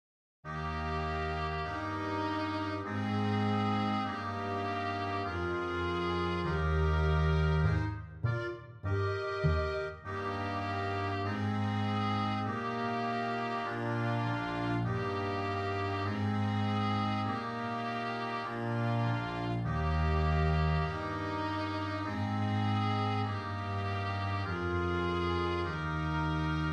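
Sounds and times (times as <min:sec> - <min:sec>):
tuba playing a nursery rhyme melody: 0:00.5 - 0:26.6.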